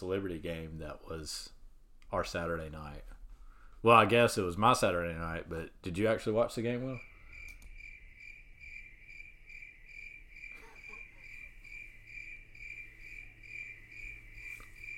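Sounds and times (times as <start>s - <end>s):
speech: 0.0s - 3.2s, 3.8s - 7.1s
quiet low hum: 0.0s - 14.9s
crickets chirping: 6.6s - 14.9s.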